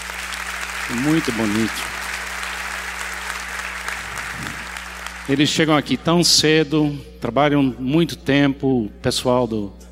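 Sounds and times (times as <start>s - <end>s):
large audience applauding: 0.0s - 5.8s
speech: 0.9s - 2.0s, 5.3s - 9.8s.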